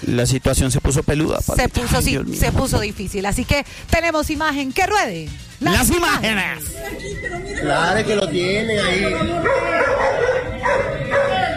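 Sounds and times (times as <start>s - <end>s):
speech: 0.0s - 11.1s
dense noisy background: 0.0s - 11.5s
laughter: 6.2s - 11.5s
dog yipping and whimpering during a police confrontation: 9.4s - 11.5s.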